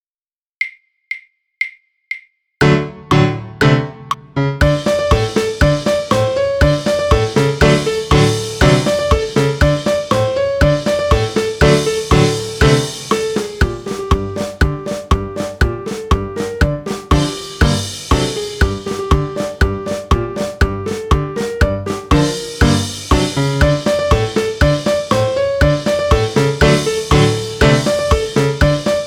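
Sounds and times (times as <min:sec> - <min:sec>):
drum kit: 0:02.6 - 0:29.0
piano: 0:02.6 - 0:29.0.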